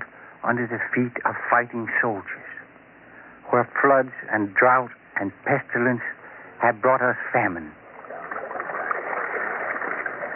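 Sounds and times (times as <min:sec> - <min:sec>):
speech: 0:00.4 - 0:02.6, 0:03.5 - 0:07.8
water pouring through irrigation channels across dry farmland: 0:08.0 - 0:10.3.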